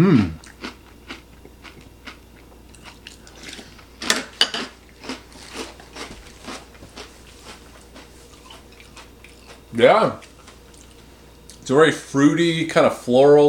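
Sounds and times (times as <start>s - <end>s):
speech: 0.0s - 0.4s, 9.8s - 10.2s, 11.7s - 13.4s
apple-flavoured breakfast cereal being chewed: 0.4s - 9.6s.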